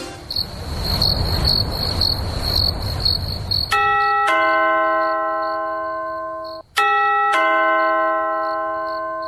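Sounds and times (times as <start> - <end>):
steady high insect-like chirping: 0.2 - 4.1, 5.0 - 6.7, 8.4 - 9.2
two-tone doorbell chime ringing at the door late at night: 3.7 - 9.2.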